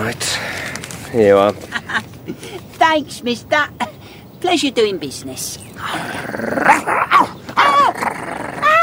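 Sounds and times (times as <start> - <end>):
speech: 0.1 - 8.2
dog growling and barking: 6.0 - 8.8.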